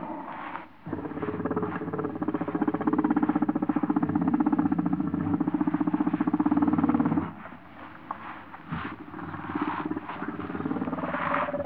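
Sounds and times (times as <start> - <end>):
warthog growling: 0.0 - 8.0, 8.6 - 11.6.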